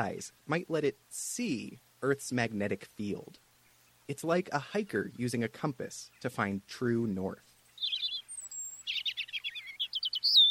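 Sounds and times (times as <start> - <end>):
speech: 0.0 - 3.4, 4.1 - 7.5
European robin singing: 3.2 - 10.4.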